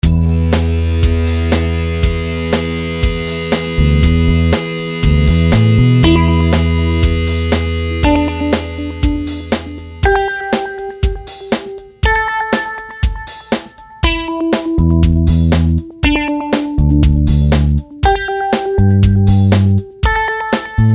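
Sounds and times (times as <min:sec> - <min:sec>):
bass: 0:00.0 - 0:10.2, 0:14.8 - 0:16.2, 0:16.8 - 0:18.0, 0:18.8 - 0:19.9, 0:20.8 - 0:20.9
organ: 0:00.0 - 0:11.8
drums: 0:00.0 - 0:20.9
rock distortion guitar: 0:00.0 - 0:20.9.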